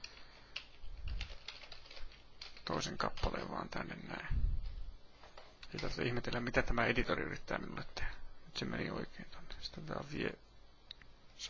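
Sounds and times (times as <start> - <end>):
typing on a computer keyboard: 0.0 - 3.5
speech: 2.7 - 4.5, 5.7 - 10.4.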